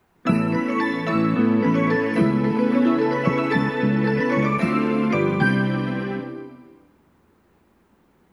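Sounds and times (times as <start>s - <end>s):
train departure melody at platform 4: 0.2s - 6.9s.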